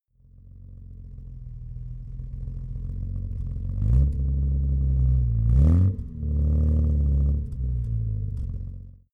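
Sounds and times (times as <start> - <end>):
Jaguar E-Type engine revving with soft exhaust: 2.3 - 8.9.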